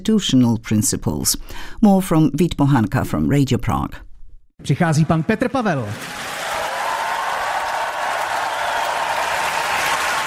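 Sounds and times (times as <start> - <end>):
speech: 0.0 - 4.0, 4.6 - 6.3
large crowd applauding: 5.8 - 10.2.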